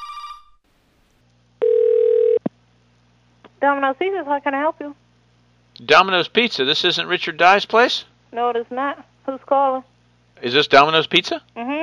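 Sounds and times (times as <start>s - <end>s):
electronic ring tone on a phone line during an outgoing call: 1.6s - 2.4s
short click on a phone line as the call is answered: 1.6s - 2.4s
speech: 3.6s - 5.0s, 5.8s - 11.8s.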